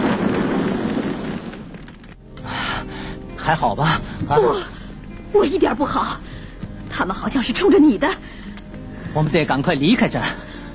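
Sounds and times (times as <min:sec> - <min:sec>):
car exploding in midair while driving off toward the sea: 0:00.0 - 0:02.2
speech: 0:03.5 - 0:06.3, 0:06.9 - 0:08.5, 0:09.2 - 0:10.5.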